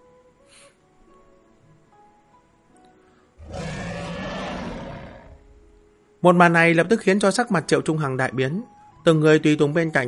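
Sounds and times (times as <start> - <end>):
huge sea creature roaring as it leaps from the sea: 3.4 - 5.5
speech: 6.2 - 10.0.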